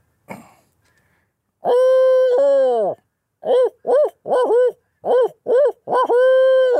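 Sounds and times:
person imitating barred owl hooting calls: 1.6s - 6.7s.

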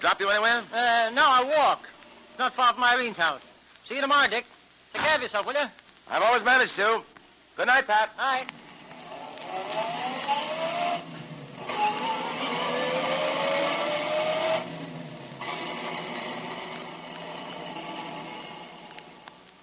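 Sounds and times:
speech: 0.0s - 8.6s
car engine humming while driving: 8.5s - 19.6s.

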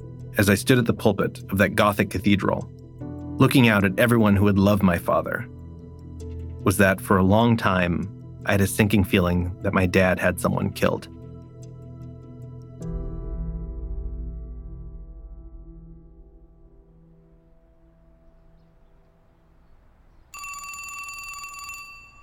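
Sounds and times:
speech: 0.4s - 2.8s, 3.4s - 5.6s, 6.6s - 11.2s
deep booming tone: 12.8s - 19.0s
telephone ringing: 20.3s - 22.2s.

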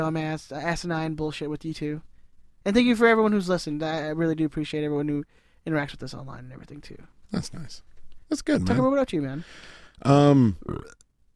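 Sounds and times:
speech: 0.0s - 11.0s
rough vocal sound: 10.0s - 11.0s
burp: 10.1s - 11.0s.

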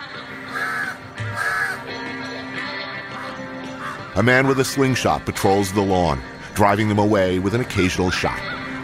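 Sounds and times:
several crows cawing harshly: 0.4s - 1.9s, 3.1s - 4.2s
speech: 4.2s - 8.6s.

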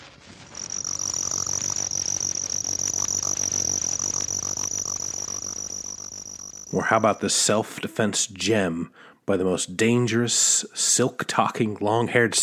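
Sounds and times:
spotted ground cricket Nemobius maculatus jerky trill: 0.1s - 7.1s
speech: 6.8s - 12.4s.

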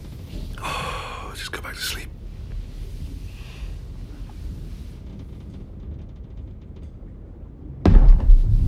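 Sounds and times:
low rumble of wind and water around a boat on open water: 0.0s - 8.6s
speech: 1.5s - 2.2s
sudden loud thud or bump: 7.8s - 8.6s.

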